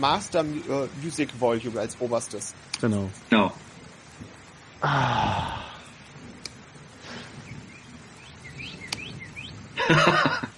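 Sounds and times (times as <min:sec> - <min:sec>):
speech: 0:00.0 - 0:03.7, 0:04.8 - 0:05.7, 0:09.9 - 0:10.3
low ambient hiss: 0:00.0 - 0:10.5
faint birdsong chirps: 0:02.6 - 0:10.5
sharp clicks: 0:06.4 - 0:06.6, 0:08.8 - 0:09.2
laughter: 0:09.8 - 0:10.5.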